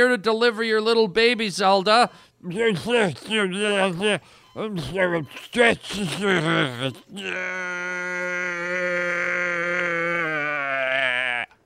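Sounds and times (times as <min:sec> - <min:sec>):
speech: 0:00.0 - 0:09.9
human voice imitating a sea cow's bellow: 0:06.1 - 0:11.6.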